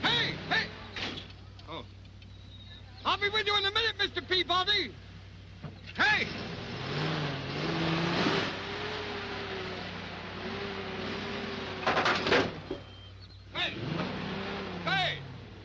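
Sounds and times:
car engine revving while maneuvering out of a parking spot: 0.0s - 1.4s, 5.4s - 13.0s, 13.6s - 15.6s
sharp clunks: 0.9s - 1.4s, 11.8s - 12.9s
speech: 3.2s - 5.1s, 6.2s - 6.5s.

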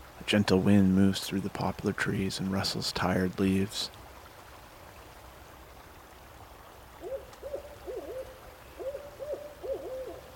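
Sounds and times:
speech: 0.3s - 4.0s
barred owl hooting at night beside a stream: 7.0s - 10.3s.

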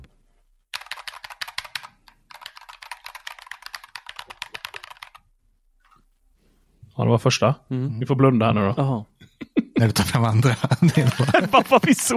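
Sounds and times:
typing on a mechanical keyboard: 0.7s - 5.2s
speech: 7.0s - 9.1s, 9.8s - 12.1s
laughter: 9.4s - 12.1s.

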